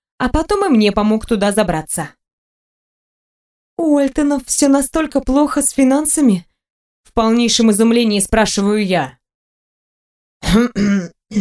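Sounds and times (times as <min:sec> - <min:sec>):
speech: 0:00.2 - 0:02.2, 0:03.8 - 0:09.2, 0:10.5 - 0:11.3
man coughing: 0:10.4 - 0:11.3.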